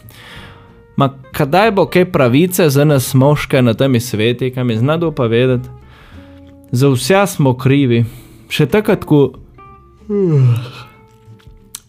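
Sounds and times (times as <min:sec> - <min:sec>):
speech: 0:01.0 - 0:05.8, 0:06.7 - 0:09.4, 0:10.1 - 0:10.9
person yawning: 0:10.0 - 0:11.1.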